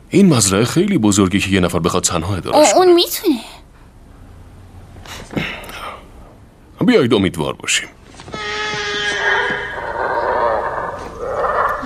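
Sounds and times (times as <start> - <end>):
speech: 0.1 - 3.6, 6.8 - 8.0
sick cow bellowing on a large farm: 8.4 - 11.8.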